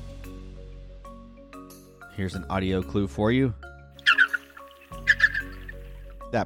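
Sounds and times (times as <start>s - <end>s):
speech: 2.2s - 3.7s
dolphin whistles: 4.0s - 6.0s.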